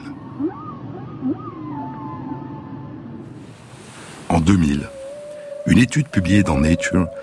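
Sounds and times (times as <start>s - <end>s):
humpback whale song: 0.0s - 7.2s
speech: 4.4s - 5.0s, 5.7s - 7.2s.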